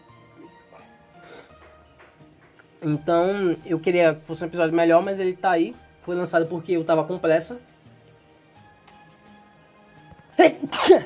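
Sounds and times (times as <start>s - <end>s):
speech: 2.8s - 7.7s
person sneezing: 10.3s - 11.0s.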